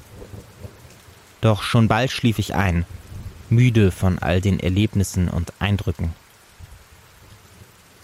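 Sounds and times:
distant thunder: 0:00.0 - 0:01.0, 0:02.8 - 0:03.5
soft rain pattering on a tent roof: 0:00.0 - 0:08.0
speech: 0:01.4 - 0:06.2.

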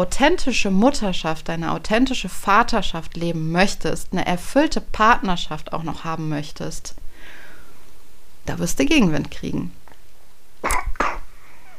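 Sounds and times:
speech: 0:00.0 - 0:07.4, 0:08.5 - 0:09.8
small child coughing: 0:10.6 - 0:11.7.

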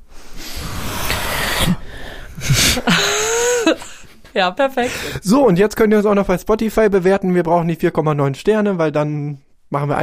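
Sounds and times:
several people breathing loudly into a microphone: 0:00.1 - 0:04.0
laughter: 0:02.4 - 0:04.2
speech: 0:04.4 - 0:10.0.

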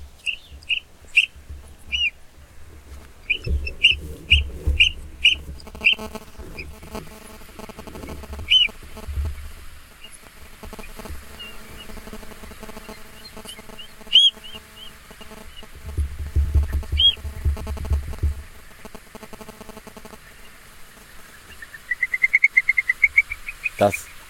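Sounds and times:
shorebird piping calls and rising trill: 0:00.0 - 0:02.2, 0:03.2 - 0:07.2, 0:08.4 - 0:08.8, 0:12.8 - 0:15.7, 0:21.4 - 0:24.2
rumble: 0:00.0 - 0:19.5.

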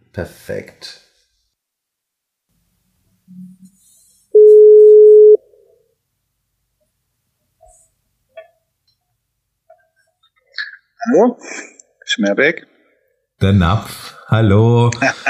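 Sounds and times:
speech: 0:00.2 - 0:01.0, 0:11.1 - 0:12.7, 0:13.4 - 0:15.2
phone ringing tone while dialing: 0:04.4 - 0:05.4
laughter: 0:14.7 - 0:15.2.

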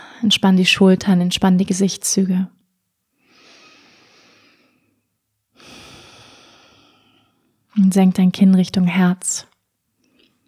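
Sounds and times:
speech: 0:00.2 - 0:02.6, 0:07.8 - 0:09.5
deep breathing in and out: 0:03.2 - 0:05.0, 0:05.6 - 0:07.5.

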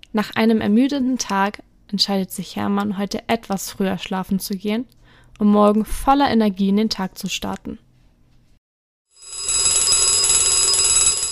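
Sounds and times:
speech: 0:00.1 - 0:07.8
alarm clock ringing: 0:09.2 - 0:11.2.

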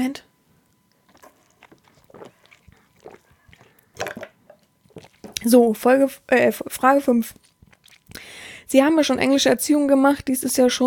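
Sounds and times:
speech: 0:00.0 - 0:00.3, 0:05.4 - 0:07.5, 0:08.7 - 0:10.8
person taking a quick sip of a drink: 0:00.9 - 0:05.5, 0:07.3 - 0:08.4
swallowing gulp: 0:01.0 - 0:05.5, 0:07.3 - 0:08.3.

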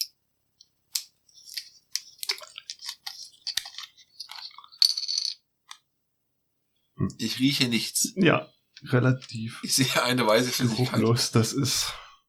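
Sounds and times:
sharp clicks, snaps and plastic-like crackles: 0:00.0 - 0:05.9
drink container being opened: 0:01.0 - 0:05.8
speech: 0:07.0 - 0:12.0.

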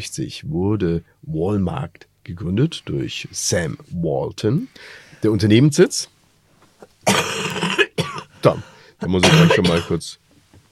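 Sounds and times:
speech: 0:00.0 - 0:06.2, 0:07.0 - 0:07.7, 0:08.4 - 0:10.2
person coughing: 0:07.0 - 0:10.0
throat clearing: 0:07.1 - 0:10.0.

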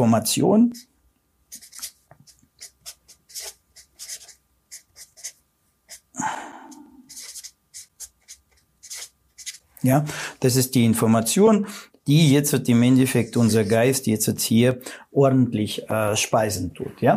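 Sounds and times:
speech: 0:00.0 - 0:00.9, 0:09.8 - 0:17.1
pen writing and scratching across paper: 0:00.6 - 0:00.9, 0:01.5 - 0:06.2, 0:07.0 - 0:09.7.

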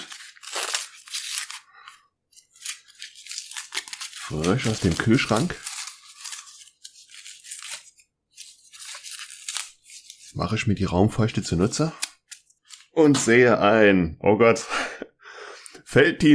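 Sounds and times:
crinkly paper and tape being torn open: 0:00.0 - 0:10.3, 0:11.5 - 0:12.9
speech: 0:04.3 - 0:05.7, 0:10.4 - 0:12.0, 0:13.0 - 0:14.8, 0:15.9 - 0:16.3.

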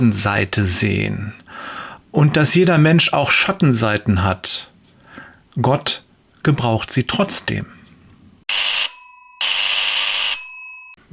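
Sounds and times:
speech: 0:00.0 - 0:04.7, 0:05.6 - 0:07.8
loud electronic telephone ring: 0:08.5 - 0:11.0.

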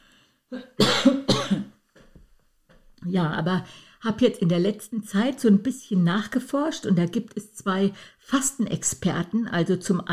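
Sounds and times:
faint breath: 0:00.0 - 0:00.5, 0:03.6 - 0:04.0
person coughing: 0:00.5 - 0:01.8
speech: 0:03.1 - 0:10.1.

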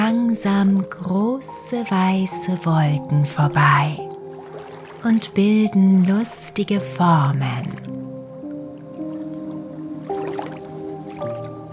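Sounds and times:
speech: 0:00.1 - 0:04.1, 0:05.0 - 0:07.9
river water splashing and trickling: 0:02.0 - 0:11.7.

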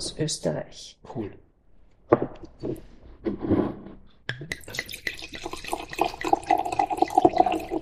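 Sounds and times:
speech: 0:00.0 - 0:01.4, 0:02.6 - 0:03.8
Austrian 2020 Klassik Qualitätswein pouring into a glass: 0:04.5 - 0:07.8.

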